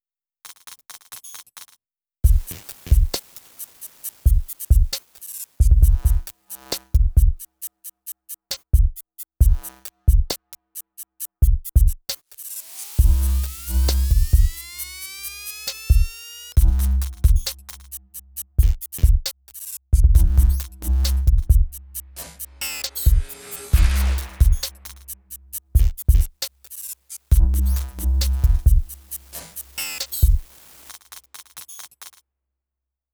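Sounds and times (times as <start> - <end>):
beat: 2.3 - 3.3, 5.6 - 7.5, 8.6 - 10.4, 13.0 - 30.6.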